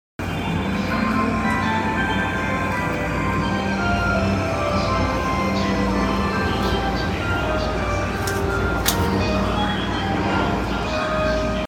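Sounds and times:
train sounds on a Tokyo line: 0.2s - 11.6s.

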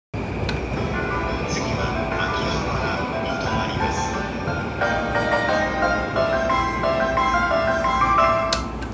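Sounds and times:
train sounds at Kanda on the Keihin-Tohoku Line: 0.2s - 8.9s.

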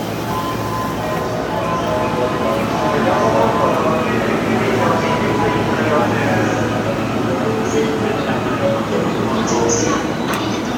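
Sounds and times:
train sounds at Ochanomizu west on the Chuo Line: 0.0s - 10.7s.

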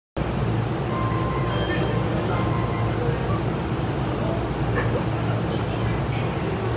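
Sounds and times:
train on the Saikyo Line south of Kita-Yono: 0.2s - 6.7s.

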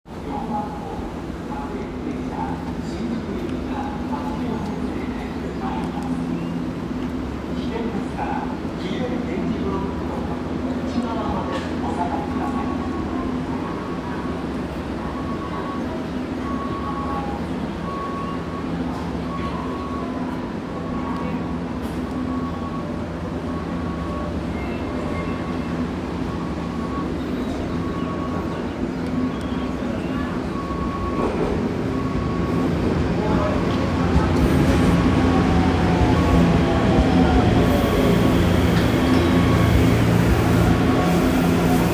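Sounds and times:
Odakyu Line train approaching Yoyogi-Uehara: 0.1s - 41.9s.

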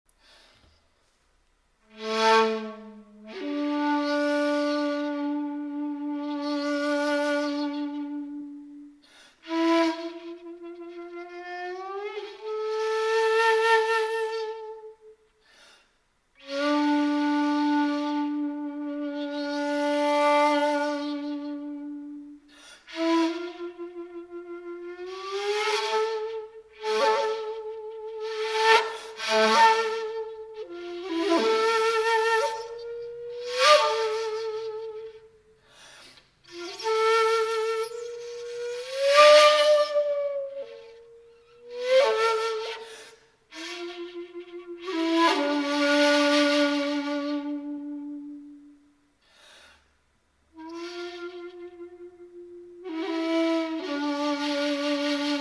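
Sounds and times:
shakuhachi music: 1.8s - 15.3s, 16.4s - 35.6s, 36.4s - 49.1s, 50.5s - 55.4s.

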